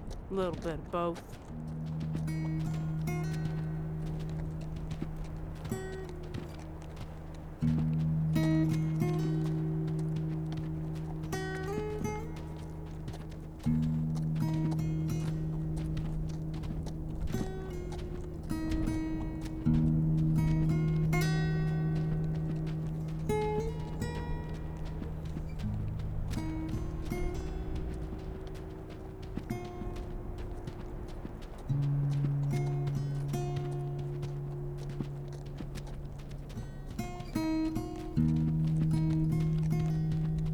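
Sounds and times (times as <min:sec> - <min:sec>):
horses' hooves clip-clopping: 0:00.0 - 0:40.5
speech: 0:00.3 - 0:01.7.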